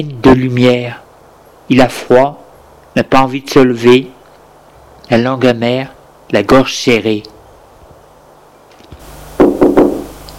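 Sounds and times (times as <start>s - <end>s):
speech: 0.0s - 1.0s, 1.7s - 4.2s, 5.1s - 7.4s
solid knocks on a wooden door: 9.4s - 10.1s.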